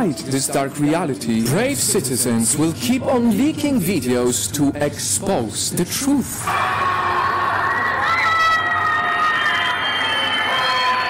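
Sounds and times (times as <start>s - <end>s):
speech: 0.0s - 6.9s
crowd of people screaming and shouting for help: 6.4s - 11.0s.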